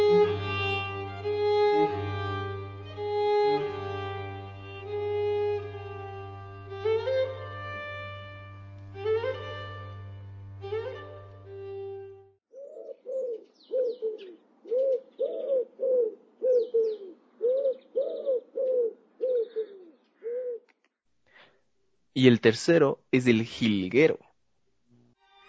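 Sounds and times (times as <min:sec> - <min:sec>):
sustained instrumental tones: 0:00.0 - 0:12.3
wood pigeon cooing: 0:12.6 - 0:20.7
speech: 0:22.2 - 0:24.2.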